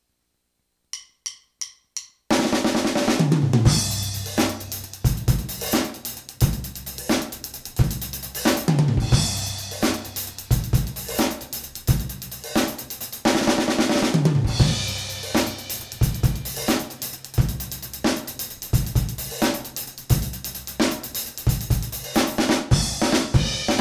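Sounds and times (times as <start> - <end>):
up-tempo 12/8 rock shuffle drum beat at 175 BPM: 1.0 - 23.7.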